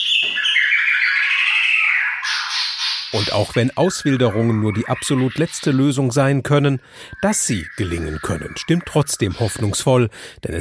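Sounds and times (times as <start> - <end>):
songbirds chirping in forest: 0.0 - 10.5
speech: 3.1 - 10.5.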